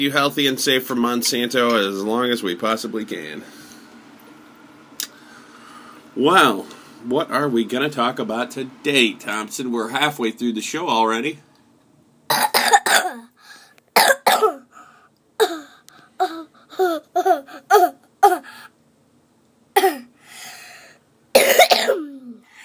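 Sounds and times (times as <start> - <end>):
speech: 0.0 - 3.6, 6.2 - 11.5, 12.3 - 12.6
person coughing: 12.3 - 13.3, 14.0 - 14.7, 15.4 - 18.6, 19.8 - 20.1, 21.4 - 22.4.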